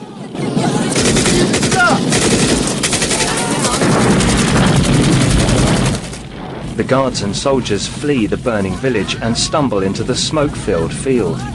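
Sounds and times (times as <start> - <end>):
automatic gunfire at burning trucks on a bridge from a war film: 0.6 - 6.6
speech: 6.8 - 11.5.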